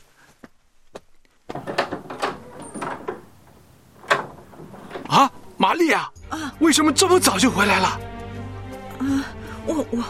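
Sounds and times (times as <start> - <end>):
door latch clicks: 1.5 - 5.6
speech: 5.1 - 8.1, 9.0 - 10.0.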